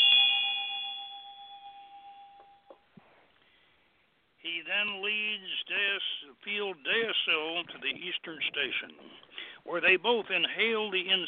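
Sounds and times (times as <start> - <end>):
ritual bell strike ringing: 0.0 - 2.9
speech: 4.5 - 11.2.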